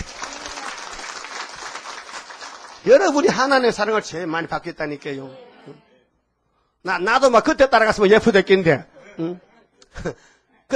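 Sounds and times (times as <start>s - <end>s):
congregation applauding at a church sermon: 0.0s - 3.7s
speech: 2.8s - 5.9s, 6.8s - 10.7s.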